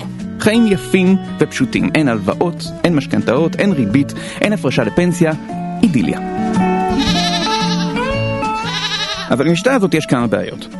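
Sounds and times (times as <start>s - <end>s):
speech: 0.4s - 6.5s, 9.3s - 10.7s
goat bleating loudly: 6.9s - 9.4s.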